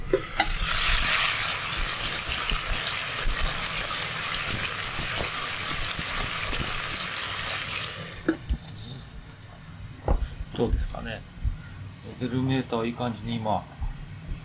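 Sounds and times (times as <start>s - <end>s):
onions and bacon sizzling in a frying pan for gricia-style spaghetti: 0.0s - 8.4s
speech: 10.6s - 11.3s, 12.2s - 13.7s.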